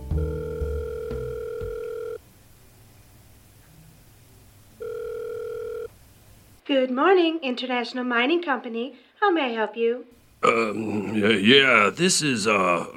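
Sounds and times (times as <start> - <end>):
telephone ringback tone: 0.0 - 2.2, 4.8 - 5.9
speech: 6.7 - 12.9.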